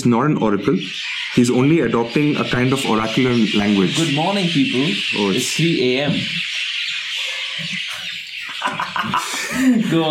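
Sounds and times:
speech: 0:00.0 - 0:06.5, 0:07.6 - 0:07.8, 0:08.6 - 0:10.1
many birds chirping loudly at night: 0:00.0 - 0:10.1
laughter: 0:07.2 - 0:10.1.

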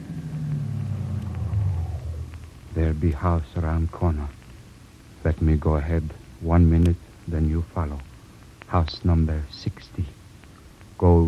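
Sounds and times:
taxi cab engine rumbling as it pulls up at a street corner: 0:00.0 - 0:03.4
speech: 0:02.8 - 0:04.4, 0:05.2 - 0:08.1, 0:08.7 - 0:10.2, 0:11.0 - 0:11.2.

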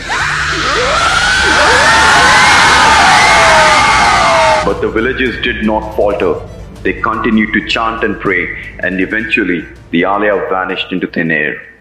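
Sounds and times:
blood-curdling scream: 0:00.0 - 0:04.8
dense roar of crowd-like noise: 0:00.0 - 0:04.8
speech: 0:05.0 - 0:11.7.

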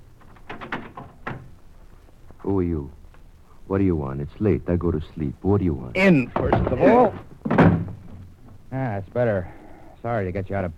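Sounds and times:
door being opened with knocking rattling clunks: 0:00.2 - 0:01.6, 0:06.3 - 0:08.2
speech: 0:02.5 - 0:03.0, 0:03.7 - 0:07.6, 0:08.7 - 0:10.7
door thud: 0:06.3 - 0:08.2.

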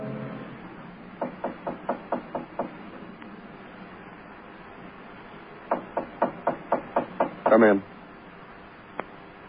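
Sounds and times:
knocking on a door: 0:01.2 - 0:02.8, 0:05.7 - 0:07.7.

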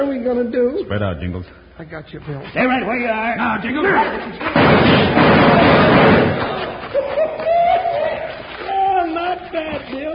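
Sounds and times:
speech: 0:00.0 - 0:06.7
gunfire in a shootout: 0:04.4 - 0:06.8
laughter: 0:05.6 - 0:09.4.

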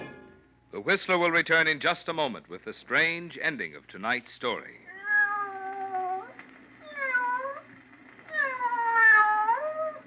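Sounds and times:
speech: 0:00.9 - 0:04.9
cat meowing in drawn-out wavering cries: 0:04.9 - 0:07.7, 0:08.3 - 0:10.0.

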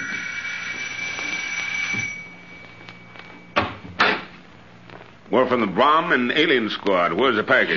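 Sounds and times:
doorbell with steady bright buzzing tone: 0:00.0 - 0:03.9
speech: 0:05.3 - 0:07.7.

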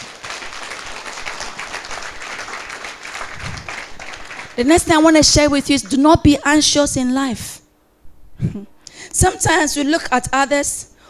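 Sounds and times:
crowd clapping: 0:00.0 - 0:05.1
speech: 0:04.6 - 0:07.6, 0:08.4 - 0:10.9.

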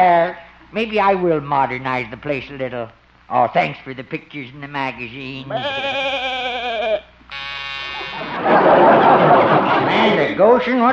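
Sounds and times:
speech: 0:00.0 - 0:06.5, 0:09.8 - 0:10.9
electric door buzzer: 0:07.3 - 0:08.5
laughter: 0:08.0 - 0:10.7.

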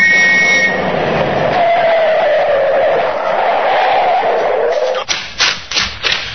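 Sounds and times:
speeding car skidding with screeching tires: 0:00.0 - 0:05.1
sharp knocks as the car comes to a stop: 0:04.8 - 0:06.3.

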